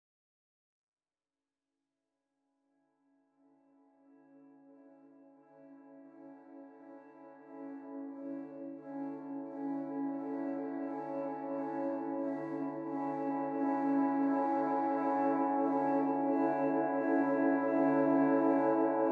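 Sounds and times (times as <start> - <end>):
main synth pad: 6.7 - 19.1.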